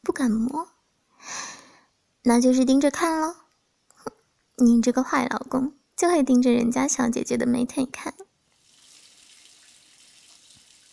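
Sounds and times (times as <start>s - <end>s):
speech: 0.1s - 1.5s, 2.2s - 3.4s, 4.0s - 8.3s
shower running in a bathroom: 8.5s - 10.9s.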